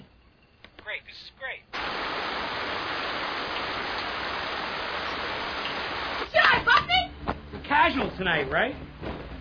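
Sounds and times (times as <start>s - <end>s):
speech: 1.0s - 2.6s, 7.8s - 9.3s
steady rain falling: 1.8s - 7.0s.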